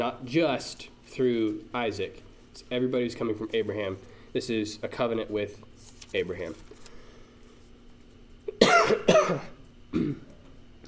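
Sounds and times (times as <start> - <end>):
speech: 0.0 - 6.7, 9.3 - 10.3
person with allergies coughing: 8.5 - 10.3
throat clearing: 8.5 - 10.4.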